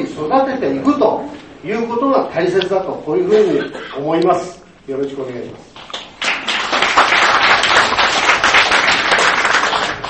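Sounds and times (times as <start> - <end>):
speech: 0.0 - 6.0
roomful of people applauding: 5.8 - 10.0.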